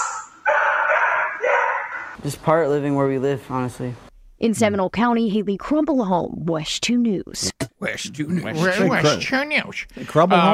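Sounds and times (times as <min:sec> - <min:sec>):
dog barking: 0:00.0 - 0:02.2
speech: 0:02.2 - 0:10.5.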